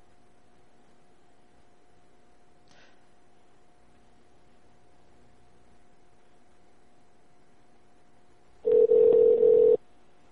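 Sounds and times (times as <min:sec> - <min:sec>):
phone ringback tone: 0:08.6 - 0:09.8.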